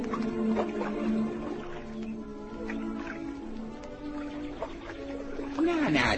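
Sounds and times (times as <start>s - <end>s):
birds chirping and twittering: 0.0s - 6.1s
water lapping and dripping: 0.0s - 6.1s
speech: 0.6s - 1.3s, 5.9s - 6.1s.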